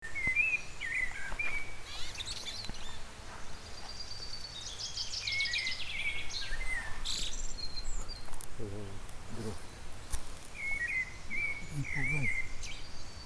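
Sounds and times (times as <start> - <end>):
high twittering birds: 0.0 - 13.2
Eurasian blackbird Turdus merula fluty warbled phrases: 6.6 - 12.9.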